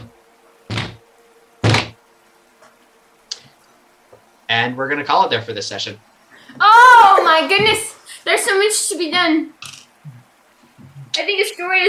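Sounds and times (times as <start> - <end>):
hammer banging: 0.7 - 1.0, 1.6 - 2.0
speech: 4.5 - 6.1, 7.2 - 9.7, 11.2 - 11.8.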